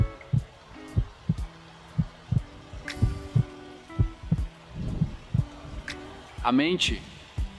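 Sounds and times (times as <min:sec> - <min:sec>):
heartbeat: 0:00.0 - 0:05.9
faint hum: 0:00.0 - 0:07.5
speech: 0:06.4 - 0:07.1.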